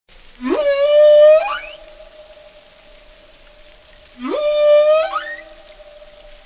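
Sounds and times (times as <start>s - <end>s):
whale song: 0.4s - 2.7s, 4.1s - 6.4s.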